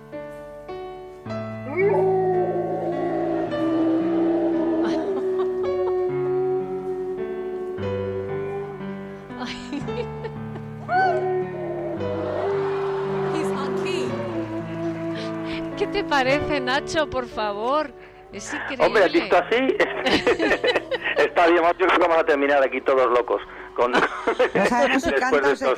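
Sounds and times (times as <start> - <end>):
piano chords: 0.0 - 25.7
Golden Retriever howling and yipping: 1.6 - 8.9, 10.9 - 15.4
laughter: 4.7 - 6.1, 9.4 - 11.0, 18.5 - 22.3, 23.8 - 25.7
speech: 16.1 - 25.7.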